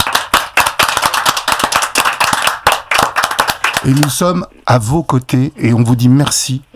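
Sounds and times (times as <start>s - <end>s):
group applause: 0.0s - 4.2s
speech: 3.8s - 6.7s.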